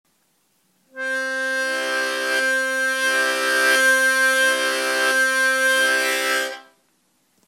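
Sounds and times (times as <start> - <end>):
harmonica octaves with tongue blocking: 0.9 - 6.8.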